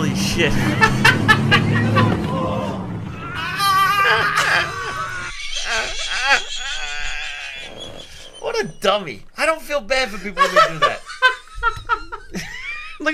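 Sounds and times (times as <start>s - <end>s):
laughter: 0.1s - 8.8s, 9.9s - 13.1s
speech: 0.4s - 2.8s, 8.6s - 11.0s
man moaning in pain in a video: 2.3s - 7.3s.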